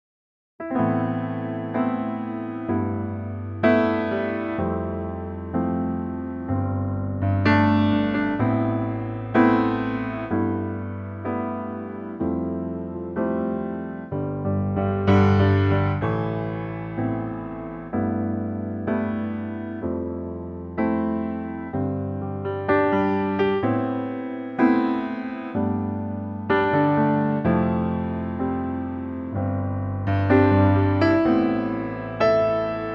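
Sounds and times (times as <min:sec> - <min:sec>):
piano playing: 0:00.6 - 0:32.9.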